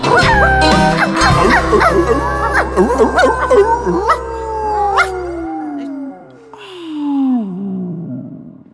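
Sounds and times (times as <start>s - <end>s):
dog howling in a pickup truck: 0.0s - 6.5s.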